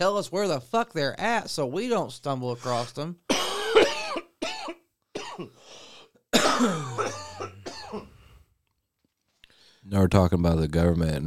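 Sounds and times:
speech: 0.0 - 4.0, 6.6 - 7.0, 9.9 - 11.2
people coughing: 3.3 - 5.6, 6.3 - 8.2
throat clearing: 6.4 - 8.2.

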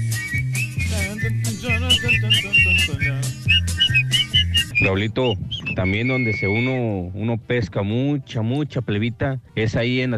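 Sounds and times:
man whistling a lively tune: 0.0 - 6.8
steady bouncing bass accompaniment: 0.0 - 9.2
speech: 4.8 - 10.1.

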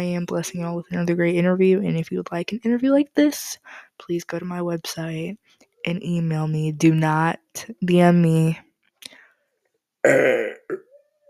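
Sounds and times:
speech: 0.0 - 8.6, 10.0 - 10.8
loud burp: 10.0 - 11.0.

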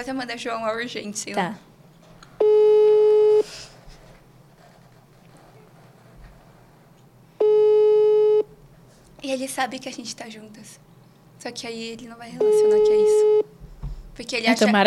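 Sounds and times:
speech: 0.0 - 1.7, 9.3 - 13.6, 14.2 - 14.8
faint hum: 0.0 - 14.8
ringback tone of an unanswered outgoing telephone call: 2.4 - 3.5, 7.4 - 8.5, 12.4 - 13.5.

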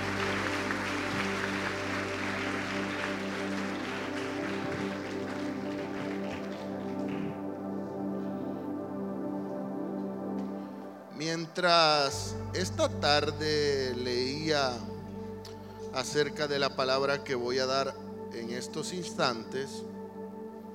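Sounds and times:
large crowd applauding: 0.0 - 7.8
sustained keyboard chords: 0.0 - 20.7
speech: 11.2 - 14.9, 15.9 - 19.9.

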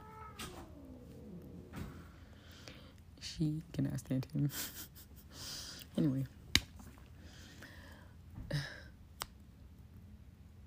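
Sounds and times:
cat meowing: 0.0 - 1.6
speech: 3.4 - 4.9, 6.0 - 6.4.

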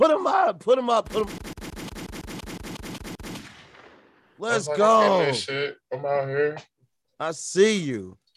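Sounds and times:
speech: 0.0 - 1.5, 4.4 - 8.2
rapid-fire gunshot sound effects: 1.0 - 4.3.

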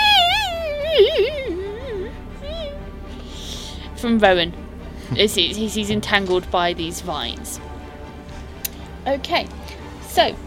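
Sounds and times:
human voice imitating a distressed childlike wail during a tabletop role-playing game: 0.0 - 2.8
speech: 4.0 - 7.7, 9.0 - 10.4.

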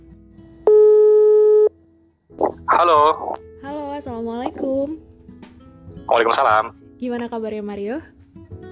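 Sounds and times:
electronic ringback tone of an outgoing phone call: 0.7 - 1.7
speech: 2.8 - 3.4, 4.0 - 5.1, 6.1 - 8.2.

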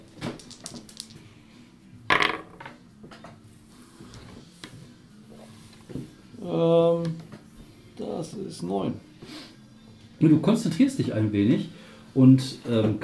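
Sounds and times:
dice rolling across a hard tabletop: 0.0 - 1.2, 2.1 - 2.7
speech: 8.2 - 9.4, 10.2 - 13.0.

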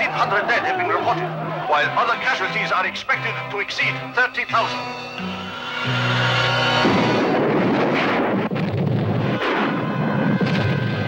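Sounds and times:
speech: 0.2 - 6.2
crackling bursts: 4.7 - 11.0
explosion of an oil company's main storage tank: 6.8 - 11.0.

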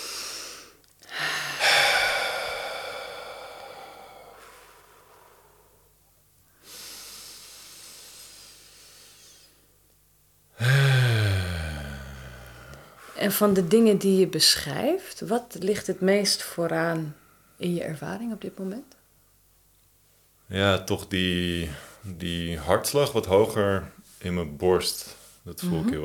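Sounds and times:
person taking deep breaths: 0.0 - 5.9, 6.5 - 9.6, 10.6 - 13.3
speech: 13.2 - 19.0, 20.5 - 26.0.

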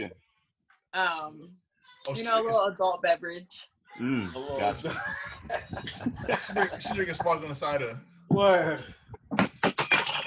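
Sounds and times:
speech: 0.0 - 0.2, 0.9 - 9.5
laughter: 4.0 - 9.0
loud crash of breaking glass: 9.6 - 10.2.

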